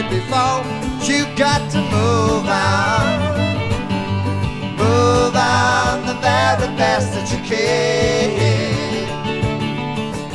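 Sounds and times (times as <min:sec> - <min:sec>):
string ensemble: 0:00.2 - 0:10.1.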